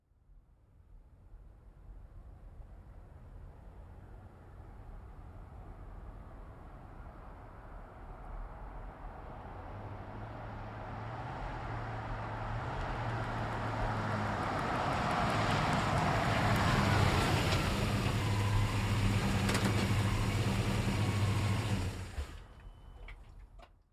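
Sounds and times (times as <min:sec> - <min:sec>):
GMC Savana truck driving up and stopping: 0:09.3 - 0:23.8.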